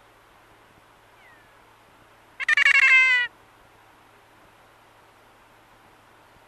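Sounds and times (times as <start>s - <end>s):
kea calling: 2.4s - 3.3s.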